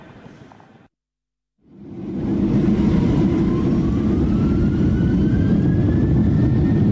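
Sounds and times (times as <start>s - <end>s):
airplane cabin drone in flight: 1.7s - 6.9s.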